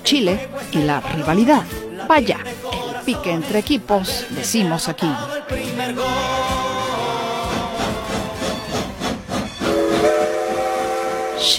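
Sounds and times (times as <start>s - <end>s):
speech: 0.1s - 6.7s
steam train chugging: 6.9s - 11.5s
steam train whistle: 8.4s - 11.5s.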